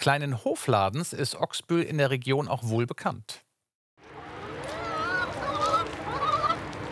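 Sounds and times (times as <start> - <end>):
speech: 0.0 - 3.4
flock of chickens clucking on a farm in Ochsbüll: 4.1 - 6.9.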